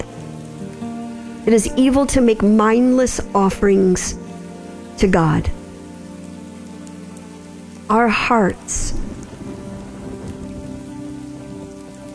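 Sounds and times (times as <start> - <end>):
steady rain pattering: 0.0 - 12.1
speech: 1.5 - 4.2, 5.0 - 5.6, 7.9 - 9.1
thunder crack rolling into a low rumble: 8.6 - 12.1.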